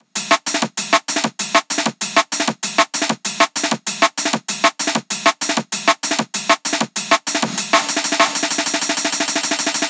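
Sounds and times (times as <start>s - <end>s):
gated hot breakbeat drum loop: 0.0s - 9.8s.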